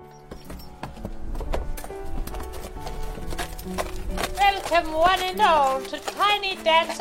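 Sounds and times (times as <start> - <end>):
horse hooves clip-clopping walking into a farm barn arena: 0.0 - 6.9
speech: 4.7 - 6.9.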